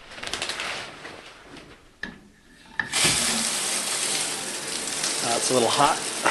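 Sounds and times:
shower water running: 2.7 - 6.2
speech: 5.4 - 6.1.

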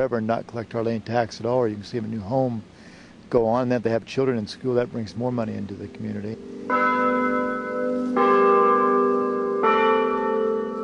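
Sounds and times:
speech: 0.0 - 7.1
church bell tower ringing: 5.8 - 10.8.

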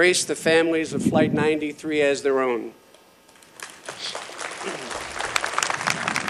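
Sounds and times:
speech: 0.0 - 2.8
audience applause: 3.6 - 6.2.

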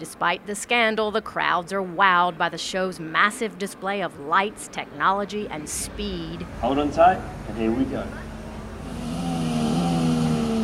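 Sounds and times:
speech: 0.0 - 8.3
Formula One race car engine revving in a ride simulator at an auto show: 8.8 - 10.6.

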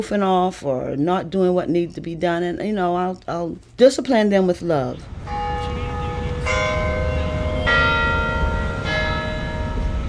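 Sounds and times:
speech: 0.0 - 5.5
church bell tolling in a campus bell tower: 5.1 - 10.0.

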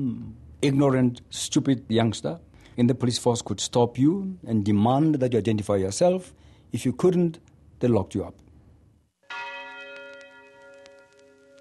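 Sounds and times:
speech: 0.0 - 8.4
big bell ringing: 9.2 - 11.5.

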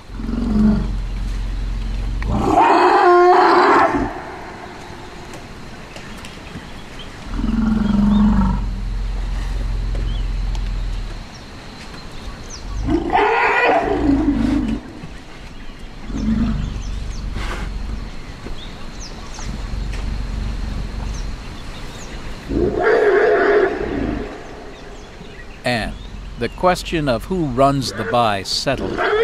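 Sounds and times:
elephant deep rumbling: 0.0 - 3.0, 7.3 - 11.4, 16.0 - 22.8, 23.8 - 27.7
male elephant harsh roaring calls at intruder: 0.0 - 5.4, 7.3 - 11.1, 12.6 - 15.1, 16.0 - 25.1, 27.9 - 29.2
low outdoor hum: 0.0 - 29.2
speech: 26.6 - 29.1.

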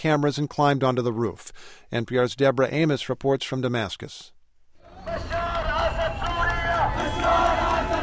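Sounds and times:
speech: 0.0 - 4.4
heavy rumble of street noise: 4.8 - 8.0
large pro-government crowd chanting and shouting outdoors: 4.8 - 8.0.

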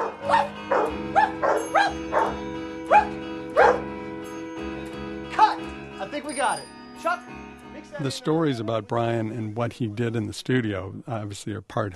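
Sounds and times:
dogs barking: 0.0 - 4.0
steady low tonal background: 0.0 - 10.3
speech: 6.2 - 11.9.

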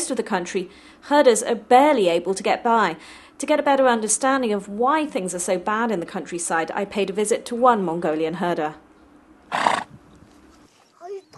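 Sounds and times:
speech: 0.1 - 8.8
horse whinnying: 9.5 - 9.9.

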